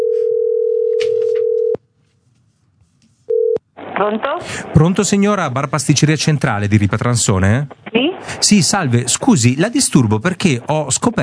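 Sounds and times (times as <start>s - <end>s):
ringing tone of an outgoing telephone call: 0.0s - 1.8s, 3.3s - 3.6s
speech: 4.0s - 11.2s.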